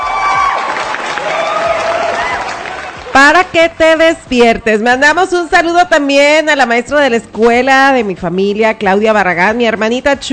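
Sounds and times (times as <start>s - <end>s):
high shouts: 0.0s - 3.0s
crowd cheering and whooping: 0.0s - 3.1s
clapping: 0.1s - 3.2s
speech: 3.2s - 10.3s.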